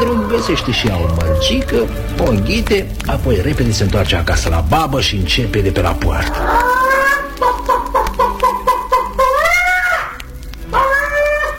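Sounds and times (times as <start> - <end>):
hen cackling as it jumps off its nest: 0.0 - 2.6, 6.3 - 11.5
speech: 0.4 - 6.7.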